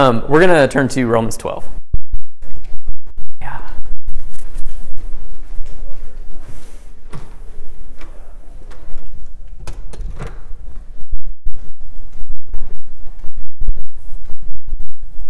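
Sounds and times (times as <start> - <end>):
speech: 0.0 - 1.8
soft footsteps: 4.1 - 15.2
door being closed: 7.0 - 11.0
sharp knocks and clicks: 8.0 - 10.8.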